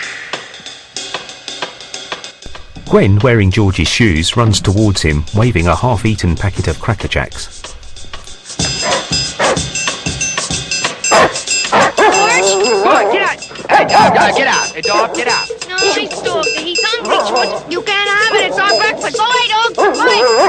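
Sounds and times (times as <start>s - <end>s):
speech: 2.9s - 7.6s, 14.0s - 20.4s
large black and white dog barking: 8.8s - 9.7s, 11.1s - 20.4s
loud excited human voices shouting: 11.7s - 20.4s.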